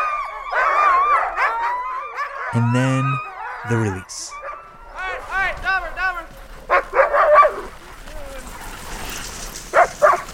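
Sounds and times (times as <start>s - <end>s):
sled dogs in harness barking: 0.0s - 2.6s, 3.2s - 5.2s, 6.6s - 7.8s, 9.7s - 10.3s
speech: 2.5s - 4.4s.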